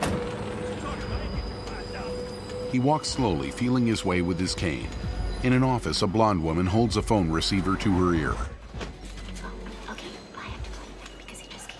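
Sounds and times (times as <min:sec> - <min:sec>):
busy street traffic on a congested road of bumper-to-bumper cars: 0:00.0 - 0:05.4
speech: 0:02.7 - 0:08.5.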